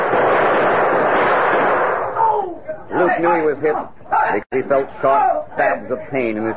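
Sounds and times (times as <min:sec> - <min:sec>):
gunfire from a shootout on a dark street by a bank: 0:00.0 - 0:02.3
speech: 0:03.2 - 0:06.5.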